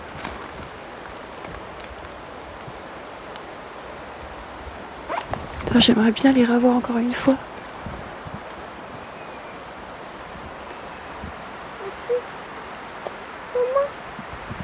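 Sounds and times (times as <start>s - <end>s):
rain-like hiss: 0.0s - 14.6s
speech: 5.7s - 7.5s
young owls or sparrowhawks calling: 10.6s - 14.0s.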